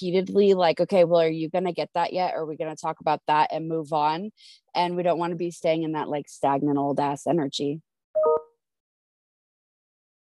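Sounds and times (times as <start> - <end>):
speech: 0.0 - 8.4
brief electronic phone notification alert tone: 8.2 - 8.6.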